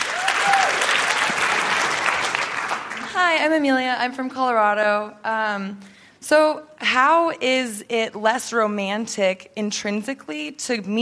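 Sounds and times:
audience applause: 0.0s - 3.2s
speech: 3.3s - 11.0s.

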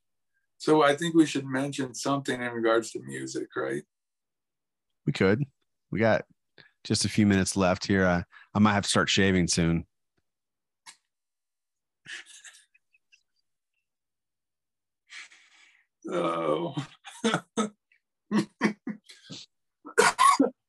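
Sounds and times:
speech: 0.6s - 3.9s, 5.0s - 9.9s, 12.0s - 12.3s, 16.0s - 18.8s
voiced throaty groan: 16.0s - 17.0s
harsh coughing fit: 17.0s - 19.1s, 19.9s - 20.6s.

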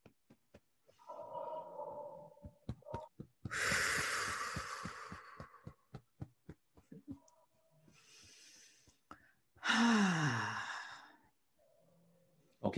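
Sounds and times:
soft rhythmic tapping thumps: 0.0s - 1.1s, 2.3s - 9.8s
person drawing a deep breath and blowing it out: 3.5s - 5.6s, 9.6s - 11.1s.

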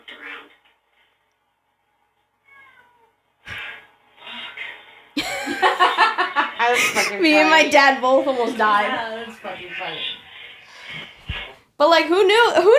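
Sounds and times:
house cat meowing at a door to be let out: 2.4s - 3.1s
laughter: 5.2s - 7.4s
speech: 6.7s - 10.1s, 11.8s - 12.7s.

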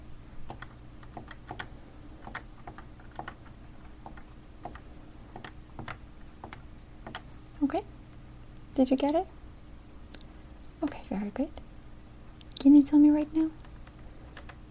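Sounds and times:
computer keyboard keystrokes typing a procedure code: 0.5s - 7.3s, 13.6s - 14.6s
speech: 7.7s - 7.9s, 8.8s - 9.4s, 11.2s - 11.6s, 12.6s - 13.6s.

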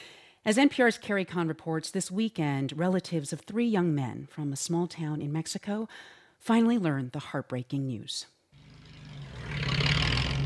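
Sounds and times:
speech: 0.4s - 8.4s
pickup trucks loaded with firewood revving up a steep road in Veracruz: 8.6s - 10.4s.

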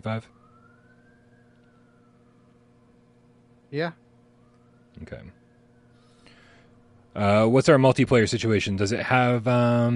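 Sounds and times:
speech: 0.0s - 0.4s, 3.7s - 4.0s, 5.0s - 5.4s, 7.2s - 9.9s
emergency siren wailing: 0.0s - 7.8s.

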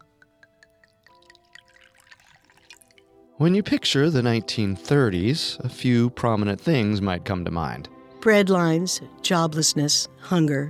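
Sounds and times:
liquid poured into a glass: 0.0s - 3.1s
speech: 3.4s - 10.6s.

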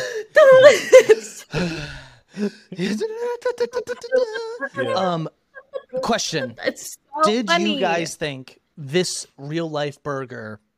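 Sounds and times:
voice imitating a narrator's dramatic breath: 1.5s - 2.8s
speech: 1.5s - 5.4s, 6.0s - 10.6s
person half-laughing: 3.7s - 6.6s.

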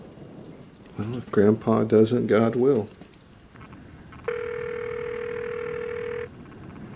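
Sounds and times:
faint hiss: 0.0s - 6.9s
speech: 1.0s - 3.0s
telephone ringing with an electronic tone: 4.3s - 6.3s.

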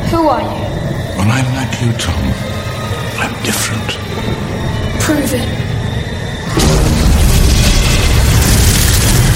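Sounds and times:
speech: 0.1s - 2.6s, 3.2s - 5.7s
sudden burst of fire in a movie trailer: 6.5s - 9.3s.

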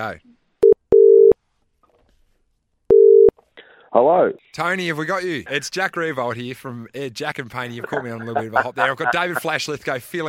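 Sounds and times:
speech: 0.0s - 0.4s, 3.9s - 10.2s
telephone line tone while dialing a call: 0.6s - 1.4s, 2.9s - 3.3s
laughter: 7.7s - 9.7s.

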